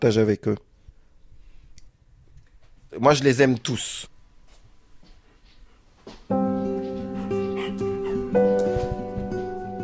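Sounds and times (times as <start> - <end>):
speech: 0.0 - 0.7, 3.0 - 4.1
dog whining: 6.4 - 9.7.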